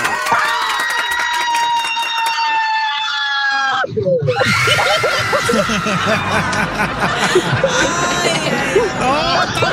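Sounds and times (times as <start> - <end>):
crowd laughing and cheering: 0.0 - 9.7
woman's long high-pitched scream of terror: 1.6 - 6.0.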